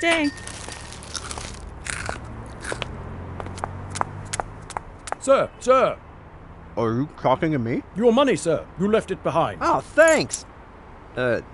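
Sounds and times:
speech: 0:00.0 - 0:00.5, 0:05.2 - 0:06.0, 0:06.8 - 0:10.5, 0:11.2 - 0:11.5
crunchy broccoli snack clumps being bitten and chewed: 0:00.4 - 0:02.9.

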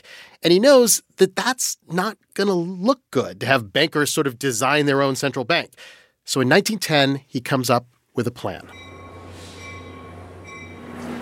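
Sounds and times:
speech: 0:00.4 - 0:08.9
brief high metallic squeals from the rails: 0:08.6 - 0:11.1
steady rumble of a train station: 0:08.6 - 0:11.1.

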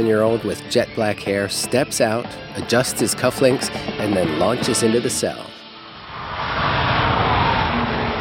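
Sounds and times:
speech: 0:00.0 - 0:05.6
silver sports car engine roar on stage at a motor show: 0:06.1 - 0:08.2.

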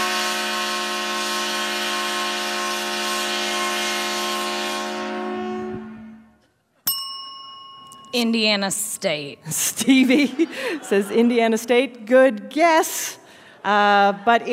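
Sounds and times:
loud 130-decibel train horn blast for a football touchdown: 0:00.0 - 0:06.4
bright ding: 0:06.8 - 0:08.5
speech: 0:08.1 - 0:14.5
laughter: 0:09.4 - 0:11.9, 0:13.6 - 0:14.5.

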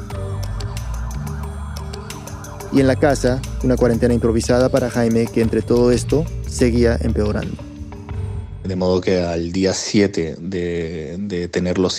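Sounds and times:
emergency vehicle sirens wailing in a city in Spain during a disease outbreak lockdown: 0:00.0 - 0:05.9
speech: 0:02.7 - 0:07.6, 0:08.7 - 0:11.9.

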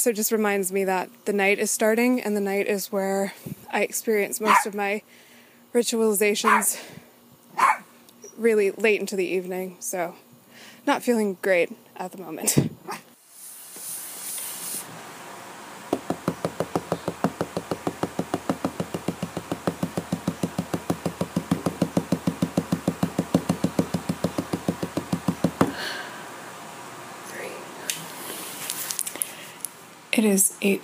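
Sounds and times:
speech: 0:00.0 - 0:07.0, 0:08.4 - 0:10.2, 0:10.8 - 0:12.8, 0:30.2 - 0:30.8
hiss: 0:00.0 - 0:30.8
rapid ritual knocking on wood: 0:15.9 - 0:25.8.

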